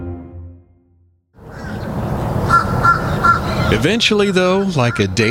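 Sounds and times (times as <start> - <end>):
crows cawing: 1.4 - 5.2
dense noisy chorus of many birds: 1.4 - 5.2
speech: 3.7 - 5.2.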